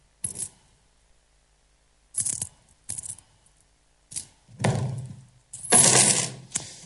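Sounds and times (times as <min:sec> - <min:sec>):
coins clattering and clinking against a hard surface: 0:00.2 - 0:00.6, 0:02.2 - 0:03.3, 0:05.5 - 0:06.4.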